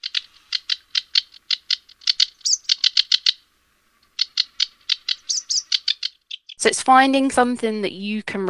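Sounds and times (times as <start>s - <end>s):
sedge warbler singing: 0.0s - 3.4s, 4.0s - 6.8s
speech: 6.6s - 8.4s.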